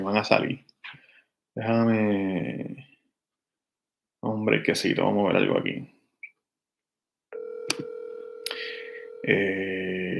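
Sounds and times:
speech: 0.0s - 0.7s, 1.6s - 2.8s, 4.2s - 6.0s, 9.2s - 9.8s
telephone tones as a number is dialed: 7.4s - 9.3s.

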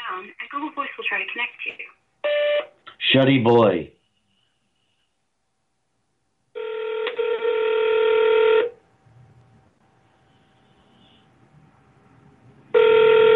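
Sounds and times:
speech: 0.1s - 2.5s, 3.1s - 4.0s
buzzing phone line ring tone through the earpiece: 6.6s - 8.8s, 12.7s - 13.3s.

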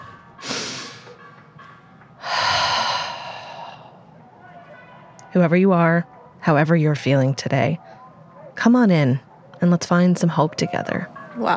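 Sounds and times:
deep breath: 0.4s - 1.2s, 2.2s - 4.1s
speech: 5.3s - 7.9s, 8.6s - 11.5s.

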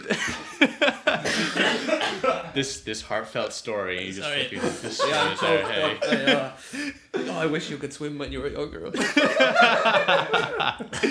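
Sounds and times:
laughter: 0.0s - 2.7s, 4.4s - 7.6s, 8.9s - 11.0s
speech: 0.1s - 0.9s, 2.6s - 11.0s
person coughing after inhaling green tea: 1.2s - 2.5s.

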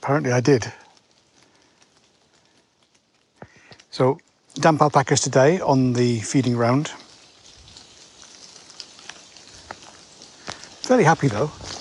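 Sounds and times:
speech: 0.0s - 0.8s, 4.0s - 7.0s, 10.9s - 11.7s
rainwater blown off tree leaves by wind dripping onto surfaces outdoors: 0.0s - 11.7s.

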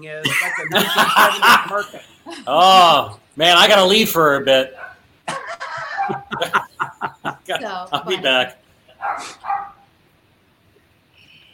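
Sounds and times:
speech: 0.0s - 4.8s, 6.1s - 6.6s, 7.5s - 9.4s
laughter: 0.2s - 4.2s, 5.3s - 8.5s
neighbor's dog barking: 4.7s - 5.0s, 5.9s - 6.6s, 9.0s - 9.9s.

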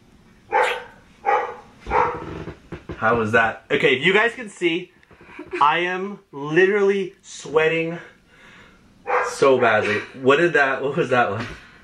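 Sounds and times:
dog barking: 0.5s - 2.2s, 9.1s - 9.8s
speech: 3.0s - 8.1s, 9.3s - 11.6s.

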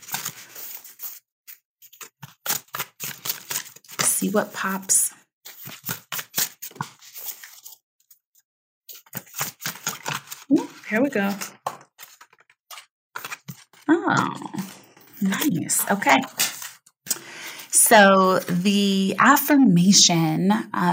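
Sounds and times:
deck of affirmation cards shuffled: 0.0s - 8.2s, 8.9s - 17.2s
speech: 4.2s - 5.2s, 10.9s - 11.5s, 14.1s - 14.5s, 15.2s - 16.4s, 17.9s - 20.9s.

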